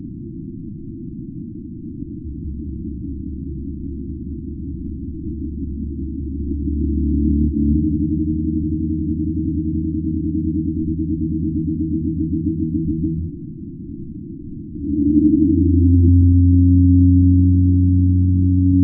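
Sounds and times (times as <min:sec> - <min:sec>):
pygmy blue whale call: 0:06.3 - 0:13.4, 0:14.8 - 0:18.8.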